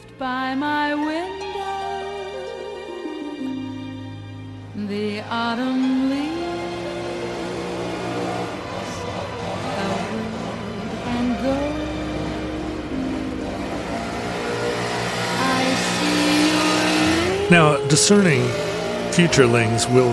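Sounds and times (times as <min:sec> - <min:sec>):
speech: 0:00.2 - 0:01.0, 0:17.5 - 0:20.1
leaf blower small engine revving: 0:04.6 - 0:20.1.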